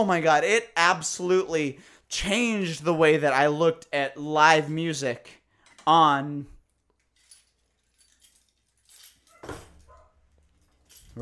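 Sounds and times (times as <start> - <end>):
speech: 0.0 - 6.5
metal keys jangling: 6.7 - 11.1.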